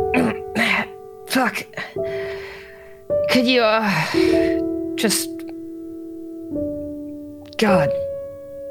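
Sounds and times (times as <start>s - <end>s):
voice acting out a woman's strained cough with pained groan: 0.2s - 1.0s
speech: 1.4s - 2.5s, 3.3s - 5.4s, 7.6s - 8.0s.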